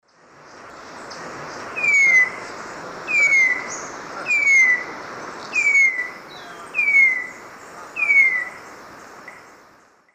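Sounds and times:
Vireolanius leucotis song in eastern lowlands of South America: 0.0s - 10.1s.

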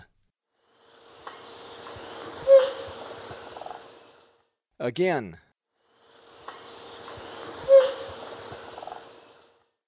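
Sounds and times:
Spangled Cotinga calling in the Eastern Lowlands of South America: 1.1s - 4.2s, 6.0s - 9.5s.

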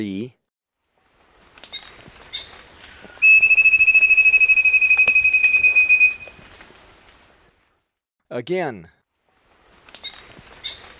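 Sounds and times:
speech: 0.0s - 0.4s, 8.3s - 9.0s
wing-banded wren song of piercing high whistles in Ecuador: 1.7s - 6.4s.

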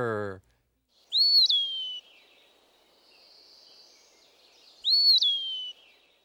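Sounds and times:
soft high hiss: 0.5s - 6.2s
Eastern Wood Pewee singing slurred whistles: 1.0s - 2.4s, 3.1s - 6.2s.

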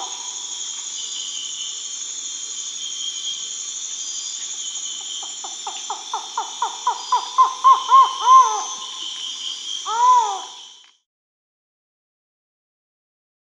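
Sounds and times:
constant high-pitched hiss: 0.0s - 10.9s
collared forest-falcon calling in South America: 5.2s - 9.1s, 9.8s - 10.6s.

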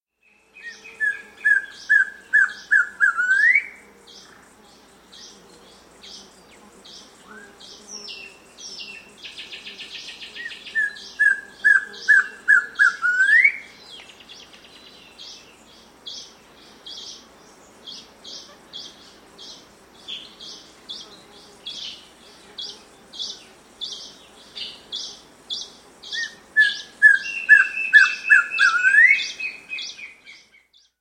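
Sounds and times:
Scrub Antpitta calling in South America: 0.5s - 15.5s, 16.1s - 30.4s.

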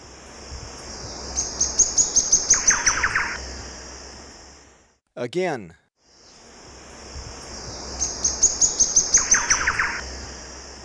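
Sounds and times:
steady high insect drone: 0.0s - 5.0s, 6.0s - 10.8s
Thrush-like wren song: 1.3s - 3.4s, 8.0s - 10.1s
speech: 5.2s - 5.8s.

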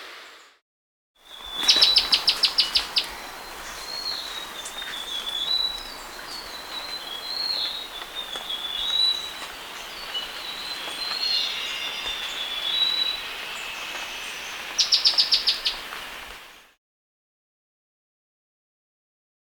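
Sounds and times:
Olive Flycatcher Mitrephanes Olivaceeus calling in the Andes of South America: 1.3s - 16.7s.

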